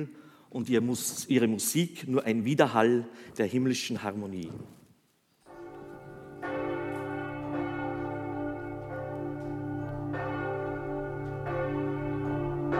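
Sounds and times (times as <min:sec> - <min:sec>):
speech: 0:00.0 - 0:04.8
solemn church bells ringing in a sustained peal: 0:05.4 - 0:12.7.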